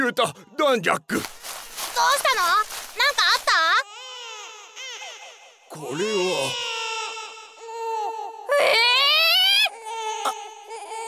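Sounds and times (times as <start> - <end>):
speech: 0.1 - 3.4, 5.7 - 6.7, 8.6 - 9.0
infant wailing and sobbing: 3.8 - 11.0.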